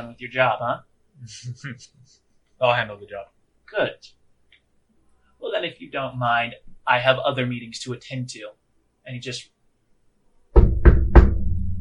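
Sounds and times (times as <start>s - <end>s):
speech: 0.0s - 4.2s, 5.4s - 9.5s
firm knocking on a wooden door: 10.6s - 11.4s.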